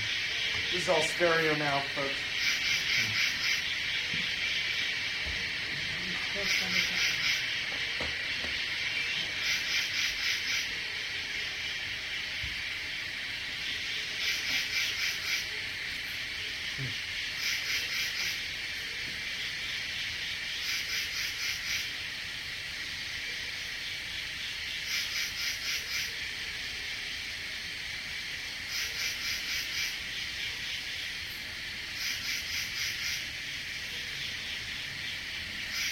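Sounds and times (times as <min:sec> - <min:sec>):
shrill drone of cicadas: 0:00.0 - 0:35.9
speech: 0:00.7 - 0:02.3, 0:06.4 - 0:07.2.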